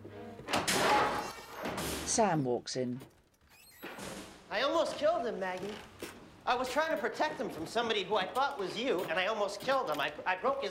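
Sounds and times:
apartment door banging open: 0.4 - 2.2
speech: 2.1 - 3.2, 4.8 - 10.7.

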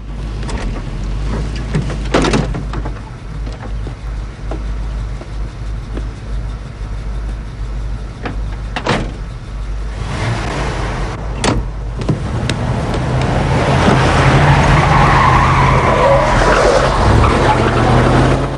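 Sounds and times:
4x4 tyres skidding while spinning around: 0.0 - 18.5
4x4 engine revving hard: 9.9 - 11.3, 12.2 - 18.5.

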